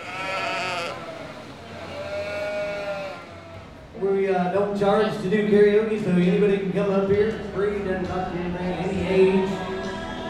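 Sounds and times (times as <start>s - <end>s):
sheep bleating: 0.0s - 3.8s
speech: 4.0s - 9.6s.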